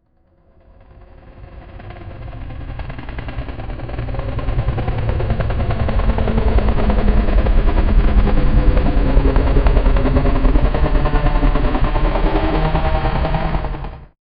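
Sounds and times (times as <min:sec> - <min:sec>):
helicopter blades whirring: 0:01.1 - 0:14.1.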